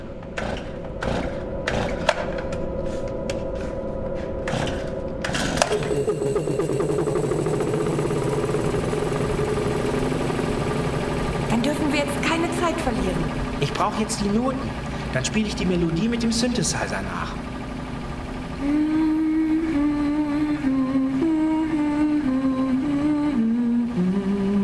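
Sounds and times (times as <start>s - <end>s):
generator pull-start rattling cranks: 0.0s - 2.8s, 4.4s - 20.0s
generator engine running with a steady drone: 0.0s - 24.6s
speech: 13.8s - 17.4s.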